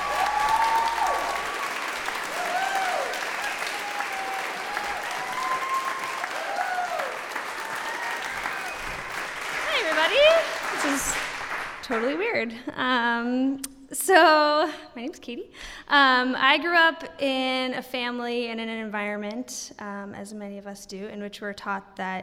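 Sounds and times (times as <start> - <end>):
crowd cheering: 0.0 - 12.2
large audience clapping: 0.0 - 12.5
shrill whistles from the crowd: 2.4 - 9.4
speech: 11.9 - 22.2.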